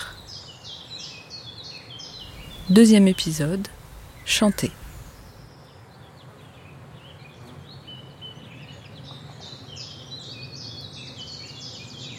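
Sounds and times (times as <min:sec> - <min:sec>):
chorus of other birds in a forest in Haute-Marne France: 0:00.0 - 0:12.1
low continuous rumble of outdoor noise: 0:02.0 - 0:05.8
common chiffchaff singing chiff-chaff song in a forest in Haute-Marne France: 0:02.2 - 0:05.6
speech: 0:02.7 - 0:04.8.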